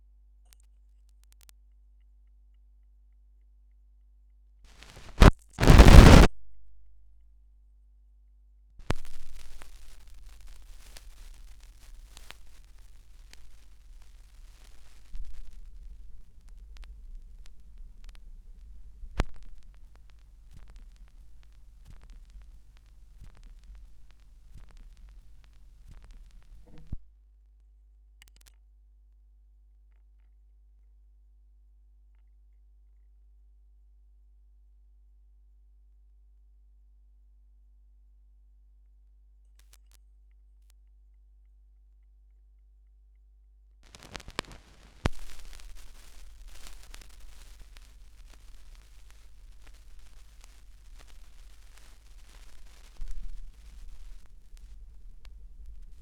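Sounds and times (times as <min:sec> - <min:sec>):
vinyl single record crackle: 0:04.7 - 0:06.4, 0:08.8 - 0:27.0, 0:43.8 - 0:56.0.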